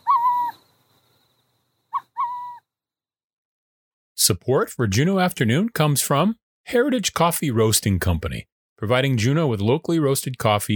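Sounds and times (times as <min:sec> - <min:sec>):
burrowing owl calls: 0:00.0 - 0:00.6, 0:01.9 - 0:02.7
speech: 0:04.2 - 0:10.7.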